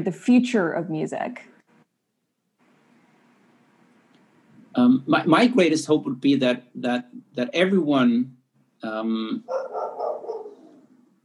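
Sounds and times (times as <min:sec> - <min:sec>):
speech: 0:00.0 - 0:01.5, 0:04.8 - 0:09.9
dog barking: 0:09.5 - 0:11.0.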